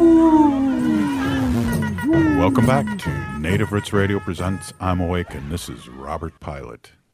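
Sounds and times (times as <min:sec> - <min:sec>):
wolf howling: 0:00.0 - 0:03.2
speech: 0:02.4 - 0:07.0.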